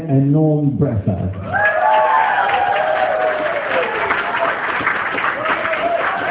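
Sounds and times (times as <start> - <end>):
speech: 0.1 - 1.6
wedding guests clapping: 1.5 - 6.2
wedding guests whooping: 1.5 - 6.2.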